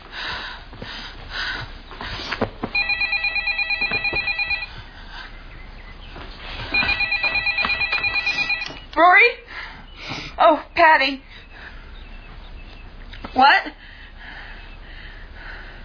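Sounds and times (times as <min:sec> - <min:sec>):
telephone ringing: 0:02.8 - 0:04.7, 0:06.7 - 0:08.8
speech: 0:10.4 - 0:11.3, 0:13.4 - 0:13.8.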